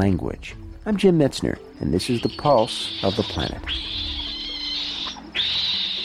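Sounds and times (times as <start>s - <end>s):
speech: 0.0s - 4.0s
vervet monkey calls: 1.9s - 6.0s.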